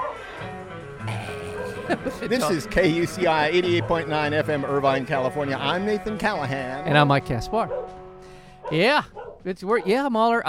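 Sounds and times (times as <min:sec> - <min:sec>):
dog barking: 0:00.0 - 0:00.2, 0:01.4 - 0:02.2, 0:03.7 - 0:05.0, 0:07.7 - 0:08.0, 0:08.6 - 0:10.0
laughter: 0:01.0 - 0:05.1
speech: 0:01.9 - 0:07.9, 0:08.7 - 0:10.4.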